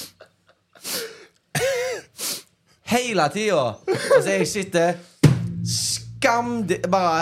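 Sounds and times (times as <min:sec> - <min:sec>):
person imitating wet snotty nasal sniffing with snorting bursts: 0:00.0 - 0:00.2, 0:00.8 - 0:01.3, 0:02.0 - 0:02.5
speech: 0:02.9 - 0:07.2.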